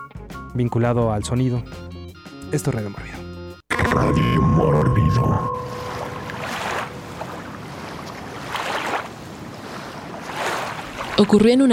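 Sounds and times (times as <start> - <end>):
speech: 0.6 - 3.2, 3.9 - 5.9, 11.2 - 11.7
waves washing against the sides of a small fishing boat: 6.0 - 11.6
light wind blowing: 6.5 - 11.2.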